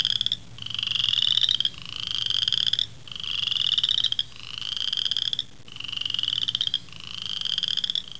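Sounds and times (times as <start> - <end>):
frog calling with buzzy pulsed trills: 0.0 - 8.1.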